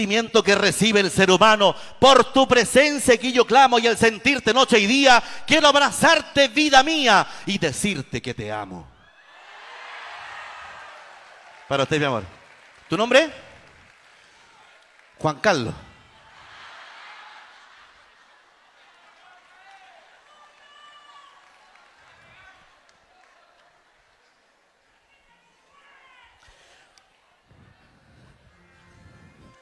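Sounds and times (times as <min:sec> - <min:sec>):
speech: 0:00.0 - 0:08.9, 0:11.7 - 0:13.4, 0:15.2 - 0:15.9
large crowd applauding and cheering: 0:09.0 - 0:24.8.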